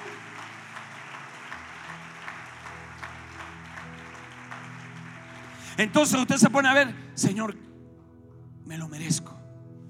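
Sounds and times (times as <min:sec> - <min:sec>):
audience applauding: 0:00.0 - 0:06.4
speech: 0:05.8 - 0:07.6.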